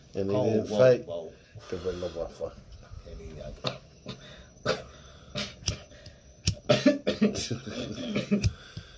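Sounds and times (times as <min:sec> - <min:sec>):
speech: 0:00.1 - 0:03.8, 0:04.6 - 0:04.8, 0:07.4 - 0:08.8
man coughing harshly: 0:06.7 - 0:08.5.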